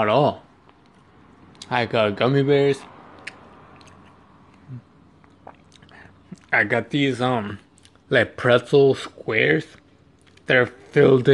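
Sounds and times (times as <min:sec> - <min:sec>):
speech: 0:00.0 - 0:00.4, 0:01.7 - 0:02.9, 0:04.7 - 0:04.9, 0:06.5 - 0:09.8, 0:10.5 - 0:11.3
chewing and crunching on candy: 0:03.2 - 0:06.6, 0:07.6 - 0:08.1, 0:09.7 - 0:11.0.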